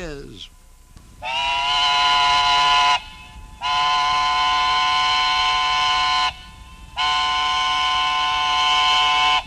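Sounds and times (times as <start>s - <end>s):
speech: 0.0s - 0.6s
steam engine whistle blasts: 1.2s - 9.4s.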